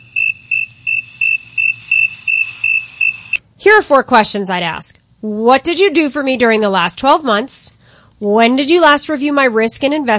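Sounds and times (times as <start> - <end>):
crickets chirping sound effect: 0.0 - 3.4
speech: 3.7 - 10.1.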